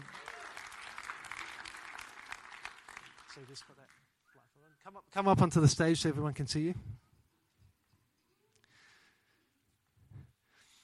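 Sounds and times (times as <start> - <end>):
audience applauding two men called up to the stage: 0.0 - 4.1
speech: 3.4 - 4.1, 4.8 - 7.0.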